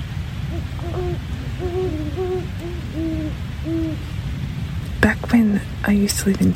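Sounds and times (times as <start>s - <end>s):
steady low background noise: 0.0s - 6.5s
two great horned owls hooting to each other: 0.5s - 4.2s
speech: 5.0s - 6.5s.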